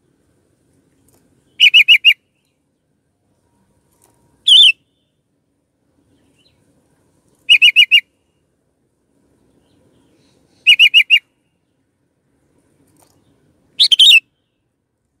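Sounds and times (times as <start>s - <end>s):
sooty-headed bulbul whistling notes and warbling phrase: 1.5s - 2.2s, 4.4s - 5.1s, 7.5s - 8.1s, 10.1s - 11.2s, 13.8s - 14.3s.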